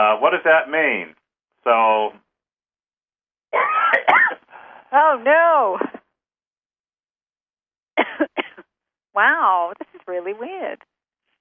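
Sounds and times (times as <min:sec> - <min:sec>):
speech: 0:00.0 - 0:02.2, 0:03.5 - 0:03.8, 0:04.9 - 0:06.0, 0:09.2 - 0:10.9
person coughing: 0:03.6 - 0:04.4, 0:08.0 - 0:08.6.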